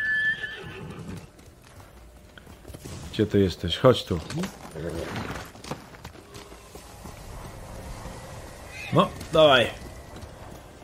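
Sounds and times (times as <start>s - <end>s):
video game horse neighing: 0.0s - 1.3s
video game horse hooves clopping: 0.1s - 3.2s, 3.8s - 10.8s
speech: 3.2s - 5.6s, 9.0s - 9.8s.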